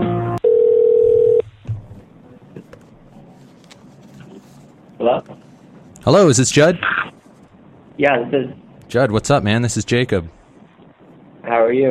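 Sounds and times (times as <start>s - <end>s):
phone line hiss: 0.4s - 1.4s
telephone steady electronic tone: 0.4s - 1.4s
speech: 6.1s - 7.0s, 8.0s - 10.4s, 11.6s - 11.8s.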